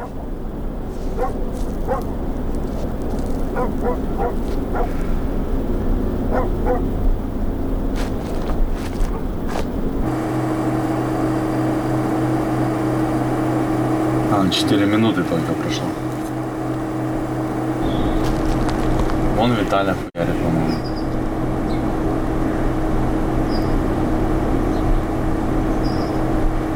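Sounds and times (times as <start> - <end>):
dog barking: 0.0 - 0.2, 1.0 - 2.2, 3.5 - 5.2, 6.3 - 7.0, 9.0 - 9.3
constant low rumble of noise: 0.0 - 26.7
speech: 14.5 - 16.2, 19.4 - 20.6.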